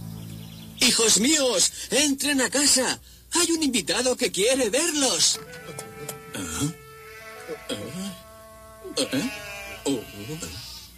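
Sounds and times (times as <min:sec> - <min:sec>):
speech: 0:00.8 - 0:06.8, 0:09.0 - 0:10.7
sheep bleating in a flock: 0:05.5 - 0:10.9.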